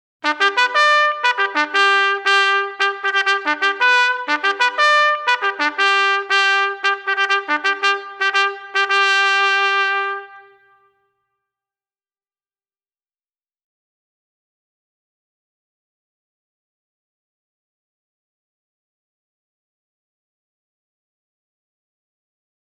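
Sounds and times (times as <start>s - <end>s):
bugle call: 0.2s - 10.9s.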